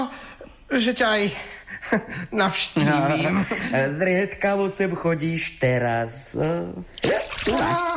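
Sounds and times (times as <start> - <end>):
speech: 0.7 - 7.9
water splashing: 6.9 - 7.9.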